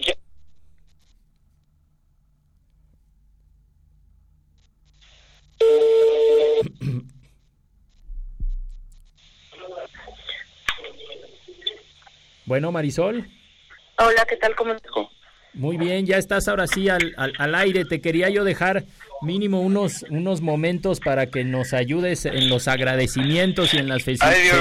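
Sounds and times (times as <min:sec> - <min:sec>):
crackly phone line noise: 0:00.0 - 0:01.8, 0:04.5 - 0:06.7, 0:07.4 - 0:24.5
phone line electronic tone: 0:05.6 - 0:06.7
speech: 0:12.5 - 0:13.4, 0:14.0 - 0:24.5.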